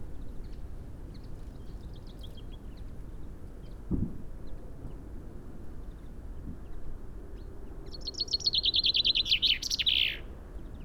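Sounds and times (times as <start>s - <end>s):
common chaffinch song: 8.1s - 10.3s.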